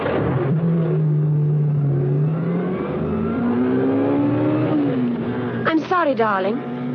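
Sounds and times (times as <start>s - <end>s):
powerful sports car engine revving: 0.0s - 5.6s
speech: 6.0s - 6.9s.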